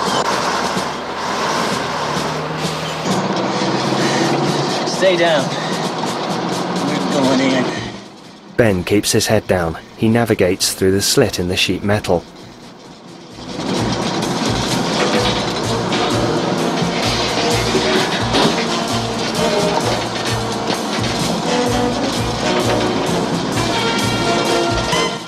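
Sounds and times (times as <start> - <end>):
bus road noise: 0.0 - 25.2
large bus engine rumbling while turning a corner: 0.0 - 25.2
speech: 5.0 - 5.6, 7.2 - 7.8, 8.6 - 12.4.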